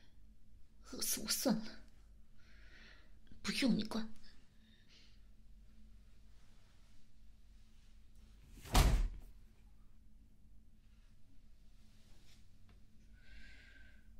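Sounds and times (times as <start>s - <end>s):
low steady hum: 0.0s - 14.1s
speech: 1.2s - 1.8s, 3.5s - 4.2s
door slamming shut: 8.6s - 9.3s.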